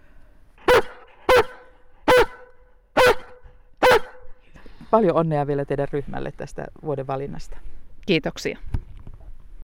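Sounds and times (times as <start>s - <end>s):
rescue dog barking: 0.6s - 4.3s
speech: 4.9s - 8.8s.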